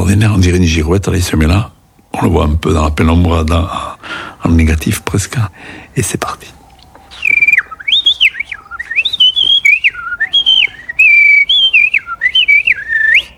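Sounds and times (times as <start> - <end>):
common blackbird singing: 0.0 - 13.3
speech: 0.1 - 6.6.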